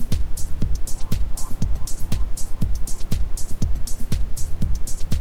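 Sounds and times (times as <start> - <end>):
ambient sound: 0.1 - 5.1
isochronic tones: 0.7 - 4.4.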